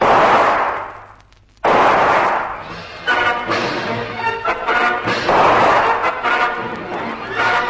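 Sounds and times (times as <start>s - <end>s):
gunshots fired into trees: 0.0s - 3.8s, 4.7s - 7.6s
rapid rattling gunfire: 1.6s - 2.6s, 5.2s - 6.2s.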